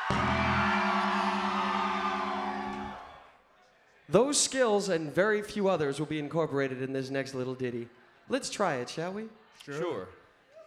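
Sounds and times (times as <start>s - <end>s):
crowd screaming together in a dense roar: 0.0s - 3.4s
speech: 4.1s - 10.2s.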